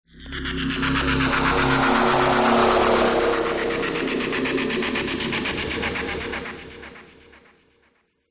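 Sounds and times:
distorted digital FM sound design swell sweep: 0:00.5 - 0:06.4.

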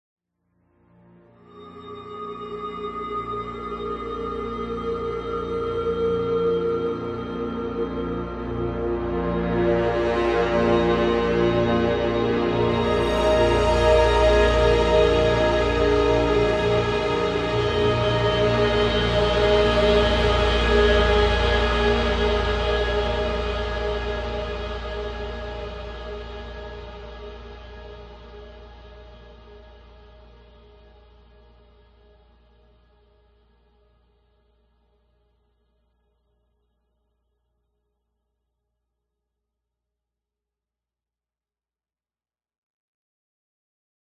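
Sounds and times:
orchestral strings: 0:01.6 - 0:29.6
dramatic tense cinematic orchestral horn ensemble crescendo: 0:08.8 - 0:27.0.

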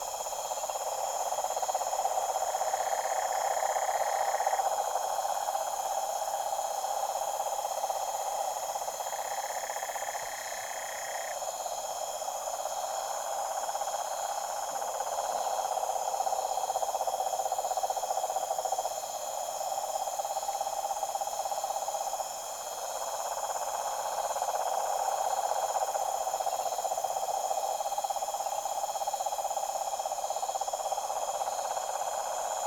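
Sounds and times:
deep toad chorus at a tropical pond at night: 0:00.0 - 0:32.6.

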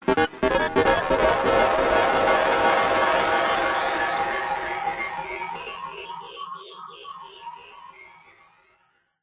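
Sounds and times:
weird sci-fi space synth melody: 0:00.1 - 0:05.8.

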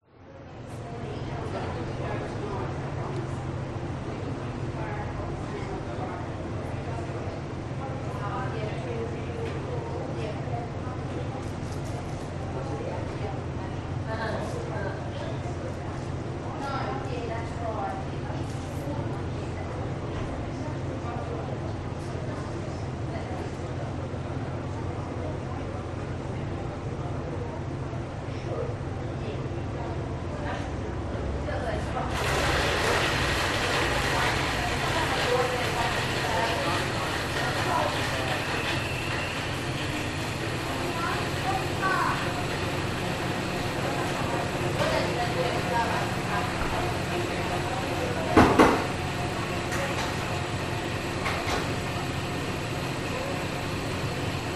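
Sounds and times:
people in a cafe coffee shop: 0:00.0 - 0:54.5
cafe coffee shop machines whirring: 0:31.9 - 0:54.5.

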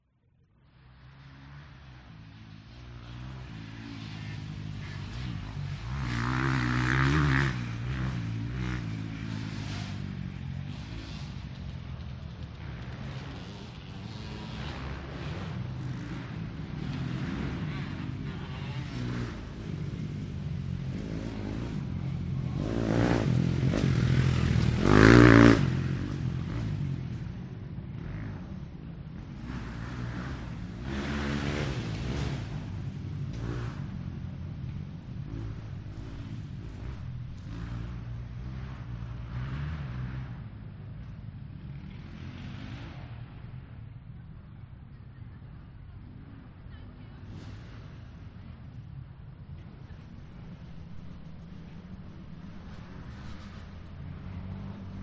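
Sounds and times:
motocross motorcycles passing in a race: 0:00.3 - 0:55.0.

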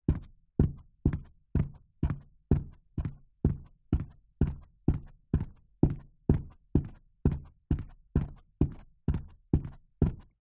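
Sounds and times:
foley footsteps in stiletto heels on rug on wood floor: 0:00.1 - 0:10.2.

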